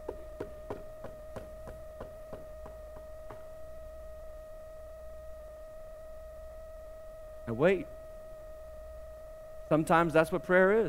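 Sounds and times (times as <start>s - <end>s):
sharp knocks: 0.0s - 3.6s
constant low electrical hum: 0.0s - 10.8s
speech: 7.5s - 8.0s, 9.7s - 10.8s.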